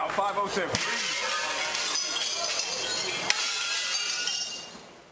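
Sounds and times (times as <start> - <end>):
speech: 0.2 - 1.1
large glass window shattering as a head is slammed into it: 0.8 - 4.8.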